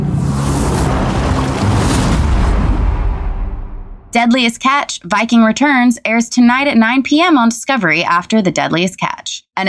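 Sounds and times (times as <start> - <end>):
heavy ocean wave slamming into a boat: 0.2 - 4.1
churning spray and water washing over the deck: 0.3 - 2.7
speech: 4.2 - 9.6.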